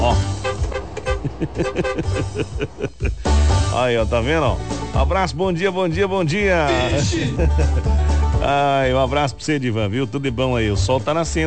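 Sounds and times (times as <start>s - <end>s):
truck horn honking: 0.0s - 2.5s, 6.6s - 7.4s
laughter: 1.0s - 3.2s, 6.6s - 8.2s
speech: 1.4s - 11.4s.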